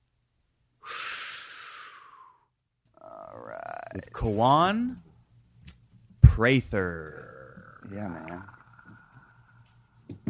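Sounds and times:
deep hot breath drawn in: 0.8 - 2.5
speech: 3.9 - 5.1, 6.4 - 7.2, 7.9 - 8.5.

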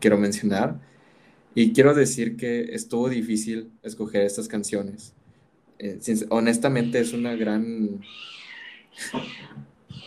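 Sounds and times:
speech: 0.0 - 5.2, 5.8 - 10.0
cat yowling: 6.8 - 10.0.

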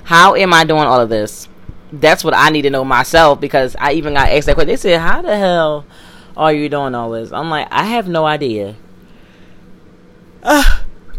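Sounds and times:
speech: 0.1 - 8.8, 10.4 - 10.8
short breathy yawn from a person at work: 10.4 - 10.9.

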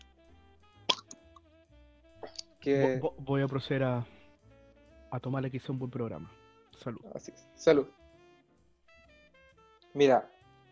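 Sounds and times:
beer bottle cap popping off: 0.9 - 1.2
speech: 2.6 - 4.2, 5.1 - 8.0, 10.0 - 10.4.

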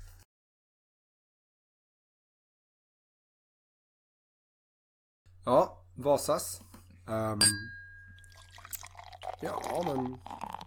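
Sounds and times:
speech: 5.4 - 7.8, 9.4 - 10.6
faint ringing clink of a glass: 7.4 - 9.7
soft drink poured into a glass fizzing: 8.2 - 10.6.

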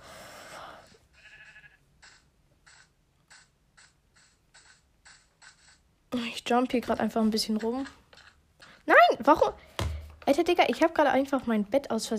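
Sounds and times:
video game sheep bleating: 1.1 - 1.9
speech: 6.1 - 8.0, 9.2 - 9.7, 10.3 - 12.1.

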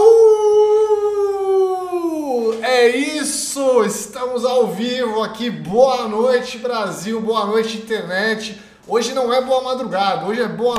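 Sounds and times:
person imitating a she-wolf howl: 0.0 - 2.6
speech: 3.9 - 10.7.

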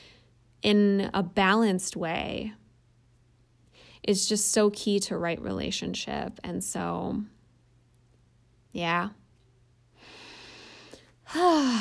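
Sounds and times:
speech: 0.6 - 2.6, 4.0 - 7.4, 8.7 - 9.2, 11.3 - 11.7
deep breath: 10.0 - 11.7.

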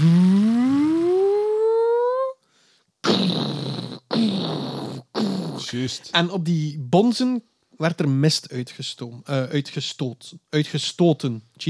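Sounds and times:
voice imitating a charging-up sound: 0.0 - 2.4, 3.0 - 5.8
speech: 5.7 - 11.6.

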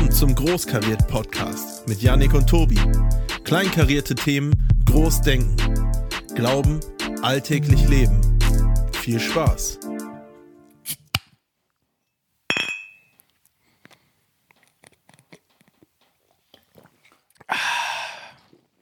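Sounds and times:
speech: 0.2 - 8.3, 9.0 - 9.8
glasses clinking together in a toast: 12.5 - 13.2.

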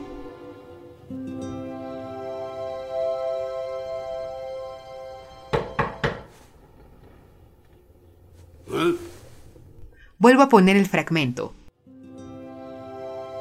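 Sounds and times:
soft sustained music: 0.0 - 6.6, 11.7 - 13.4
firm knocks on a door: 5.5 - 6.3
speech: 10.2 - 11.6.

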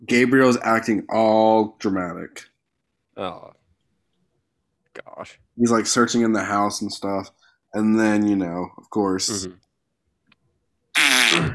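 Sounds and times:
speech: 0.1 - 2.5, 3.2 - 3.6, 5.0 - 9.6, 11.4 - 11.5
man farting in a film scene: 10.9 - 11.5.

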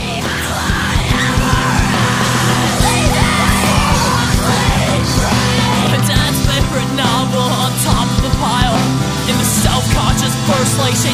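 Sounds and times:
harsh screamed vocal in a screamo song: 0.0 - 6.2
drums: 0.0 - 11.1
loud dense distorted guitars: 0.0 - 11.1.

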